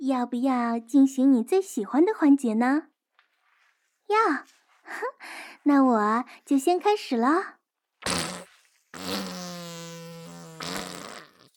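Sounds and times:
speech: 0:00.1 - 0:02.9, 0:04.1 - 0:07.6
long loud buzzy fart ending in a rough sputter: 0:08.0 - 0:11.5
short breathy puff: 0:08.1 - 0:11.4.

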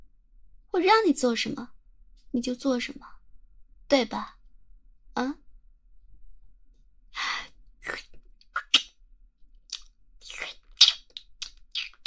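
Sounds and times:
speech: 0:00.7 - 0:03.2, 0:03.9 - 0:04.4, 0:05.2 - 0:05.4
crunchy biting and chewing on a black bear-paw ice cream bar: 0:09.7 - 0:12.0.

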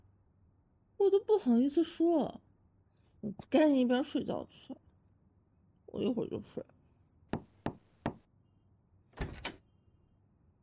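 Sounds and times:
speech: 0:01.0 - 0:02.4, 0:03.2 - 0:04.8, 0:06.0 - 0:06.7
firm knocks on a door: 0:07.4 - 0:08.2.

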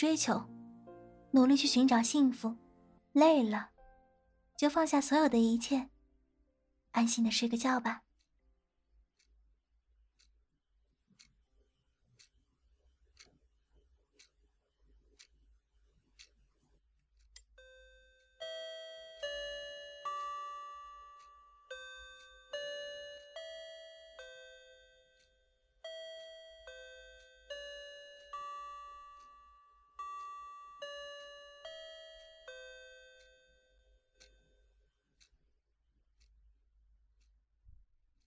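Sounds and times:
speech: 0:00.0 - 0:00.6, 0:01.3 - 0:03.7, 0:04.6 - 0:05.9, 0:06.9 - 0:08.0
clock bells chiming a slow melodic sequence: 0:17.6 - 0:34.9.

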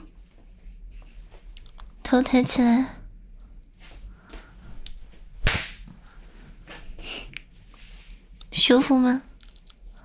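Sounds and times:
speech: 0:02.1 - 0:03.0, 0:08.7 - 0:09.3
slap across the face: 0:05.4 - 0:05.9.

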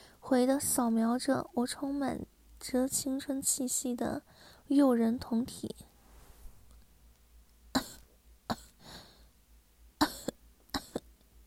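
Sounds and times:
speech: 0:00.2 - 0:05.8
sharp forced-sounding coughs: 0:07.8 - 0:08.8, 0:10.0 - 0:11.1.

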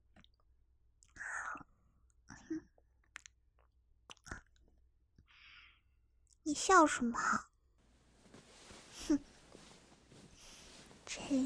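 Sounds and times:
soft wet biting and nibbling mouth sounds: 0:03.0 - 0:04.7
speech: 0:06.5 - 0:07.5, 0:11.3 - 0:11.4
faint breathy hiss: 0:08.0 - 0:11.4.

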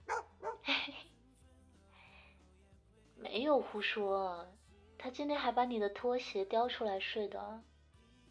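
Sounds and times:
pet dog whining faintly: 0:00.0 - 0:00.6
pet dog barking on command: 0:00.0 - 0:00.7
speech: 0:03.4 - 0:07.7.

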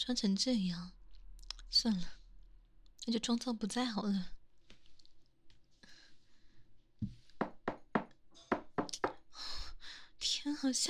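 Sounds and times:
speech: 0:00.0 - 0:01.0, 0:01.7 - 0:02.2, 0:03.1 - 0:04.4, 0:10.2 - 0:10.8
loud forceful knocking on a door: 0:07.4 - 0:09.2.

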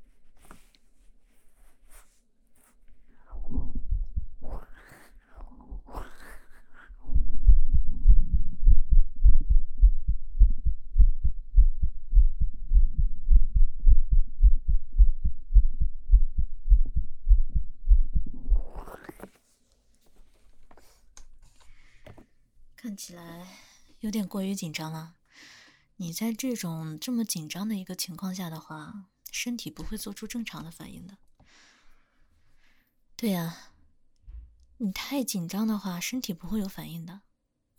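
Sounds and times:
rustling handling noises: 0:00.0 - 0:03.1, 0:19.1 - 0:22.4
patient's rapid heartbeat heard through a stethoscope in an outpatient clinic: 0:03.3 - 0:06.0, 0:07.0 - 0:18.9
speech: 0:23.0 - 0:31.3, 0:33.2 - 0:33.7, 0:34.8 - 0:37.7.

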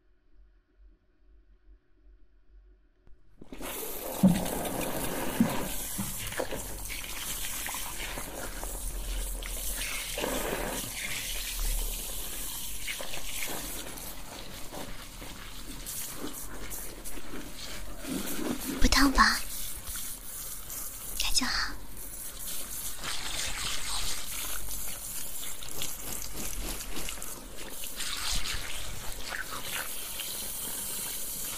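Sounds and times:
running water rinsing hair during a hair wash: 0:03.4 - 0:31.5
faint whispering: 0:18.7 - 0:19.5, 0:21.2 - 0:21.8, 0:29.2 - 0:30.2.

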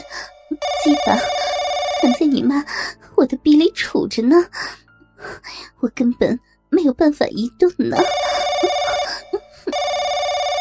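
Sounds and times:
telephone bell ringing: 0:00.0 - 0:02.7, 0:08.0 - 0:10.5
speech: 0:00.8 - 0:01.4, 0:02.0 - 0:04.8, 0:05.4 - 0:08.3.

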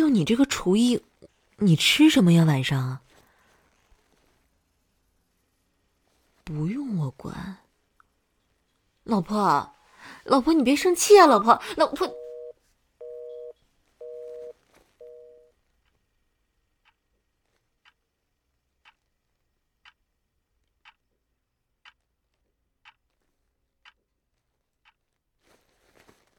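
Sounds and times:
speech: 0:00.1 - 0:03.0, 0:06.5 - 0:07.6, 0:09.1 - 0:12.2
quiet evenly spaced ticking: 0:03.1 - 0:26.2
electronic telephone number unreachable tones: 0:11.5 - 0:15.5.

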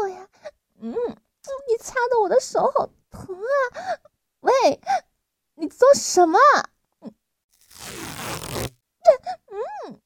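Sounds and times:
speech: 0:01.8 - 0:04.0, 0:05.6 - 0:06.7
adhesive tape being torn off roll: 0:07.6 - 0:08.8.

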